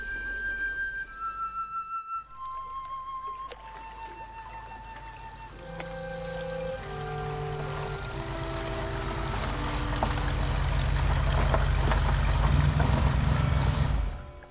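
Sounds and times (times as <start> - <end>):
sustained musical tones stepping downward: 0.0 - 12.4
car engine rumbling while driving down to a point: 5.6 - 14.4.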